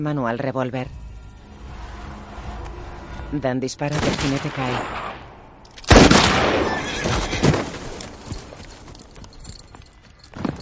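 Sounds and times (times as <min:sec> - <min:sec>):
speech: 0:00.0 - 0:01.0, 0:03.3 - 0:05.0
horse whinny: 0:06.6 - 0:07.8
horse hooves clip-clopping: 0:07.2 - 0:10.6.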